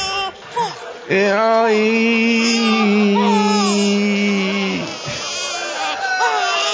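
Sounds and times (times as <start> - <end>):
speech: 1.1 - 2.6
person imitating a baby crying: 2.3 - 6.7.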